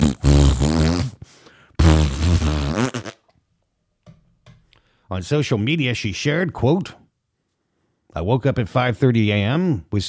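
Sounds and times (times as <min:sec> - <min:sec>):
fart: 0:00.0 - 0:01.2, 0:01.8 - 0:03.3
speech: 0:05.1 - 0:07.0, 0:08.2 - 0:10.0.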